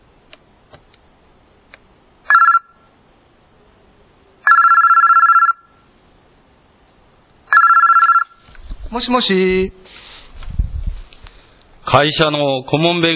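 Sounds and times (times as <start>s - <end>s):
telephone ringing with electronic tonal bursts: 2.3s - 2.8s, 4.4s - 5.8s, 7.5s - 8.4s
speech: 8.9s - 9.9s, 11.9s - 13.1s.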